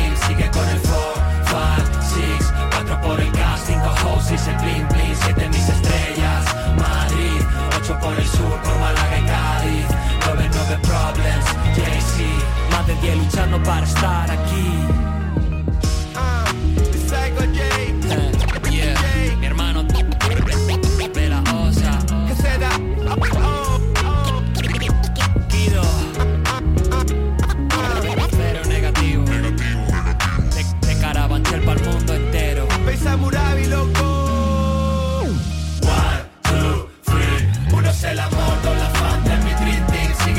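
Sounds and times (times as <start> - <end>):
rap song with heavy bass-driven beat: 0.0 - 40.3.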